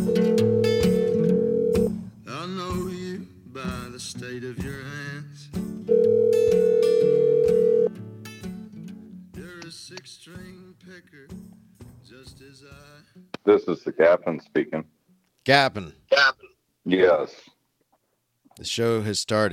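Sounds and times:
phone call being dialed: 0:00.1 - 0:01.9, 0:05.9 - 0:07.9
speech: 0:14.1 - 0:17.5, 0:18.6 - 0:19.5.

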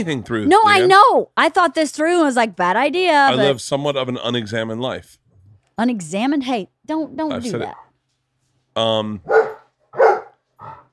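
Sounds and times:
speech: 0:00.0 - 0:05.2, 0:05.8 - 0:07.8, 0:08.8 - 0:09.5
dog barking: 0:09.2 - 0:10.9.

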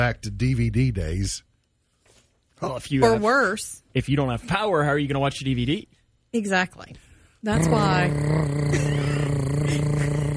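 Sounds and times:
speech: 0:00.0 - 0:01.5, 0:02.6 - 0:09.9
voice imitating a running generator: 0:07.5 - 0:10.3.

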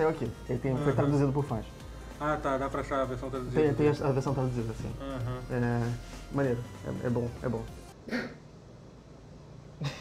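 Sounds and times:
speech: 0:00.0 - 0:08.4
single short sneeze: 0:08.0 - 0:08.4.

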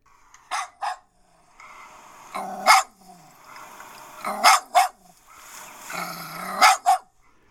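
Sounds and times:
dog barking in sharp loud woofs: 0:00.5 - 0:01.1, 0:02.3 - 0:03.0, 0:04.2 - 0:05.2, 0:05.8 - 0:07.1
dog growling in low rumbles: 0:02.3 - 0:03.3, 0:04.2 - 0:05.1, 0:05.9 - 0:07.1.

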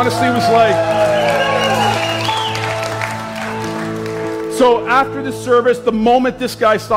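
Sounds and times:
speech: 0:00.0 - 0:01.1, 0:04.6 - 0:06.9
room full of people clapping: 0:00.0 - 0:04.9
sustained musical tones: 0:00.0 - 0:06.3.

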